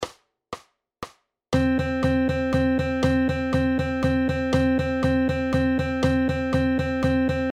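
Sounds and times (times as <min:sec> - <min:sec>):
eighth notes in 3/4 time: 0:01.6 - 0:07.5.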